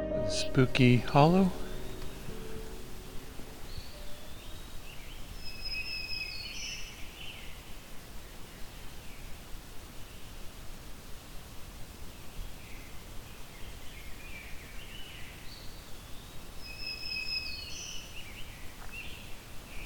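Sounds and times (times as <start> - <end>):
eastern wood-pewee singing: 0.2 - 4.1
black-throated green warbler singing: 0.2 - 7.6, 12.4 - 19.8
steady rustling hiss: 0.2 - 19.8
speech: 0.5 - 1.6.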